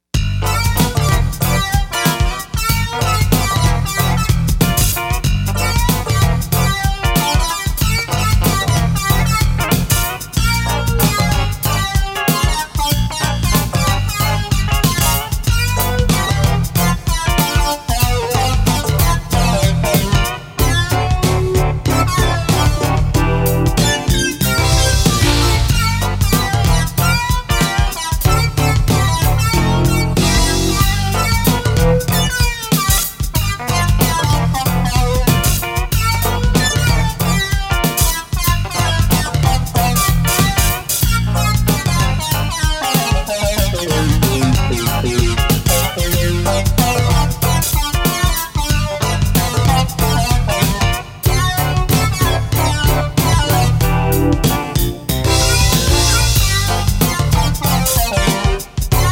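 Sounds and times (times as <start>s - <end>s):
remix on a sound module: 0.2s - 59.1s.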